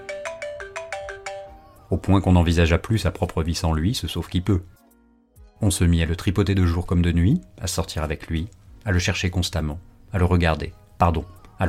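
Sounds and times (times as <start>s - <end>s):
telephone ringtone playing a repeating electronic melody: 0.0s - 1.9s
speech: 1.9s - 4.8s, 5.6s - 11.6s.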